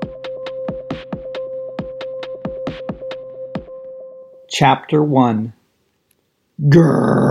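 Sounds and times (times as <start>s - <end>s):
speech: 4.5s - 5.6s, 6.6s - 7.2s
person growling: 6.6s - 7.2s
voice imitating fire roaring out of steel hot air balloon burners: 6.6s - 7.2s.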